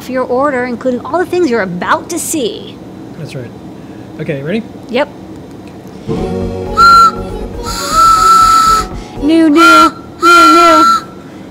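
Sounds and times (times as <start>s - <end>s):
speech: 0.1s - 3.6s, 4.2s - 5.2s, 6.1s - 6.4s, 9.3s - 11.0s
loud steady train whistle blasts: 6.6s - 11.3s.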